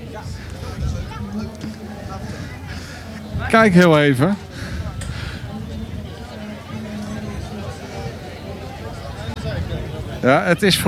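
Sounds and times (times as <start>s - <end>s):
crowd of children chattering and calling out in a tent: 0.0s - 10.8s
speech: 0.2s - 0.7s, 3.4s - 4.4s, 10.2s - 10.8s.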